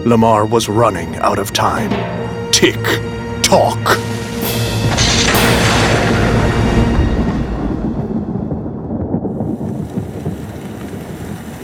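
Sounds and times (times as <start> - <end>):
speech: 0.0 - 4.2
heavy rain pouring: 4.9 - 11.6.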